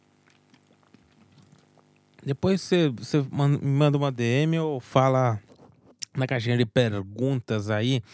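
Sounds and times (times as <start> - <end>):
person sipping water with soft gulps: 0.0 - 2.3
speech: 2.2 - 5.5, 6.2 - 8.1.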